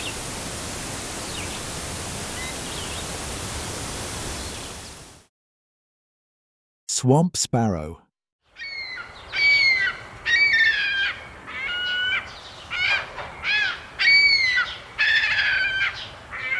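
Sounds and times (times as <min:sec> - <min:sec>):
speech: 0:07.0 - 0:08.0
Ring-billed Gull harsh squealing calls at Carden Alvar: 0:08.6 - 0:16.5.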